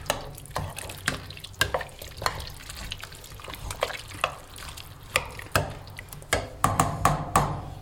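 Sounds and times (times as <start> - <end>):
spoon scraping and clinking around a pot of simmering goulash: 0.0 - 5.8
goulash bubbling and hissing at a low simmer: 0.0 - 7.0.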